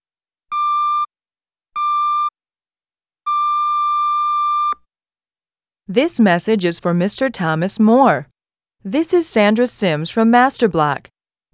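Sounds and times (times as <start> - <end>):
answering machine electronic tone beeps: 0.5 - 1.1, 3.3 - 4.8
speech: 5.9 - 11.5.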